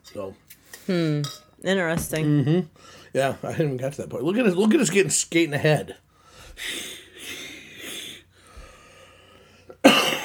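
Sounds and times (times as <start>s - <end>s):
speech: 0.1s - 6.0s, 6.6s - 7.0s
wheezy strained breathing: 6.1s - 9.8s
raspy coughs: 9.8s - 10.2s.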